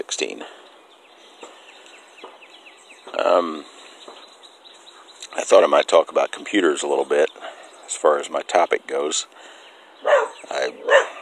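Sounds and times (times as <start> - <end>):
speech: 3.4 - 3.7, 5.5 - 7.3, 8.0 - 11.0
dog barking: 10.0 - 11.2.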